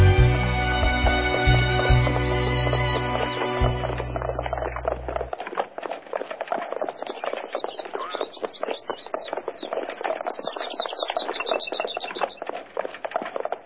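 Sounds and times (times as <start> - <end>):
horse hooves clip-clopping while riding: 0.2 - 13.6
faint high chirps: 1.5 - 5.3, 6.4 - 12.5.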